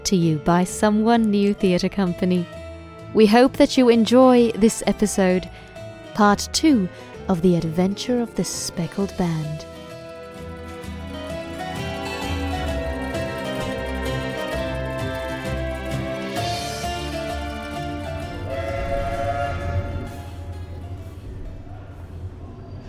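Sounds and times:
speech: 0:00.1 - 0:09.7
steam train running on rails: 0:09.0 - 0:22.8.

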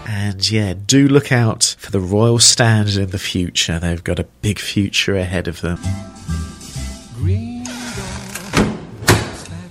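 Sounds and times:
speech: 0:00.3 - 0:06.5
door swinging with a drawn-out creak: 0:07.6 - 0:09.6
door shutting with solid thuds: 0:08.1 - 0:09.5.

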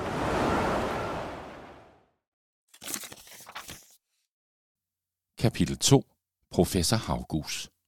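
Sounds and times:
roaring rush of whirling wind from a waterspout: 0:00.0 - 0:02.0
speech: 0:05.4 - 0:07.8.

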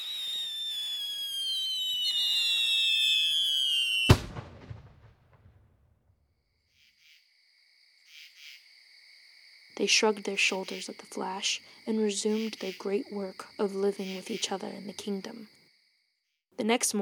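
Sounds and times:
faint insect chirps: 0:00.0 - 0:04.0, 0:06.6 - 0:16.4
firework whistling upward: 0:00.0 - 0:05.6
speech: 0:09.8 - 0:15.6, 0:16.6 - 0:17.0.

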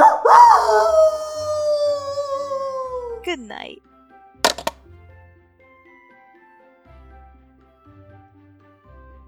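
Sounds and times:
small mongrel dog howling: 0:00.0 - 0:03.3
speech: 0:03.3 - 0:04.5.

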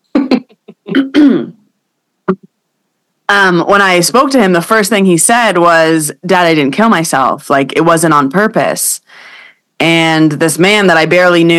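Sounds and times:
person clearing throat: 0:00.2 - 0:01.6
speech: 0:03.3 - 0:11.5.

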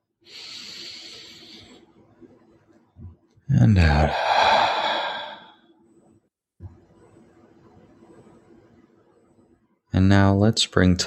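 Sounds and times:
deep breath in: 0:00.3 - 0:01.8, 0:04.0 - 0:05.6
speech: 0:03.6 - 0:04.3, 0:10.0 - 0:11.0
breathy rustling: 0:04.0 - 0:05.6.

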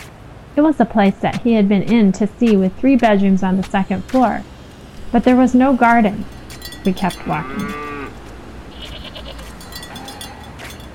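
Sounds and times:
steady outdoor rumble: 0:00.0 - 0:10.9
speech: 0:00.6 - 0:04.5, 0:05.1 - 0:07.8
goats bleating while crossing a road: 0:06.5 - 0:10.8.

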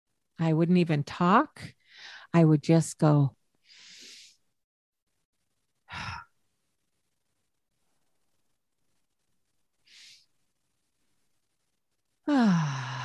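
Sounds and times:
speech: 0:00.4 - 0:03.4, 0:12.3 - 0:13.0
exaggerated deep calming breaths: 0:01.8 - 0:02.3, 0:03.6 - 0:04.5, 0:09.8 - 0:10.5, 0:12.3 - 0:13.0
loud drawn-out voiced sigh: 0:05.9 - 0:06.3, 0:12.2 - 0:13.0.

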